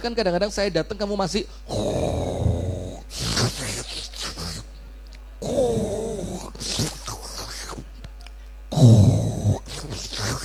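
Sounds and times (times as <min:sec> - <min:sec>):
speech: 0:00.0 - 0:02.3
person imitating snoring with throaty exhales and sucking inhales: 0:01.7 - 0:04.7, 0:05.4 - 0:07.9, 0:08.7 - 0:10.4.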